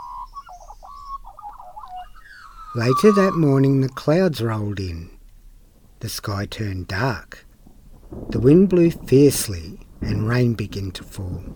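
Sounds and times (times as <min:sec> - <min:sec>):
little chick singing in its nest with high tweeting chirps: 0:00.0 - 0:04.0
faint low noise: 0:00.0 - 0:11.5
speech: 0:02.8 - 0:05.2, 0:06.0 - 0:07.5, 0:08.1 - 0:11.5.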